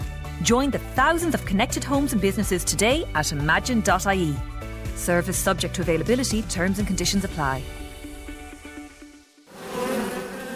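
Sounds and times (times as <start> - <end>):
speech: 0.4 - 7.8
swarm of bees buzzing: 9.5 - 10.5.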